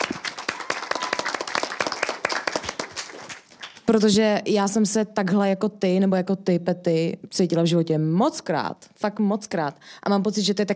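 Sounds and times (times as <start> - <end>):
small audience applause: 0.0 - 3.8
speech: 3.9 - 10.7.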